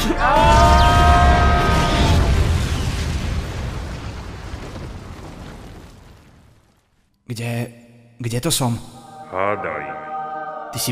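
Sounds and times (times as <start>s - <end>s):
speech: 0.0s - 0.5s, 7.3s - 10.0s, 10.7s - 10.9s
American nuclear weapon explosion: 0.4s - 6.7s.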